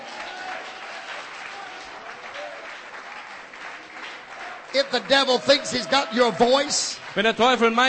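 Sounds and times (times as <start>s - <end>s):
large group applauding: 0.0s - 7.8s
speech: 4.7s - 7.8s.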